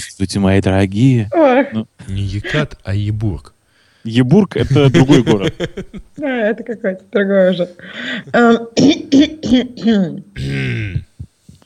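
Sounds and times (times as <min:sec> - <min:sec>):
speech: 0:00.0 - 0:11.1
person clearing throat: 0:02.3 - 0:02.7, 0:08.8 - 0:11.4
laughter: 0:04.6 - 0:06.2.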